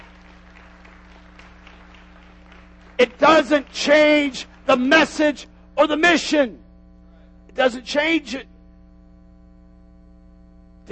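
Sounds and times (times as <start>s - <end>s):
church audience clapping hands during a morning service: 0.0s - 5.4s
low electrical hum: 0.0s - 10.9s
speech: 3.0s - 6.6s, 7.6s - 8.5s.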